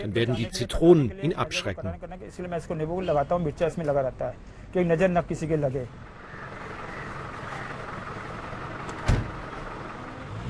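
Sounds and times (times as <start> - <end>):
speech: 0.0 - 6.1
old Ambassador taxi engine rattling and clattering: 6.0 - 10.3.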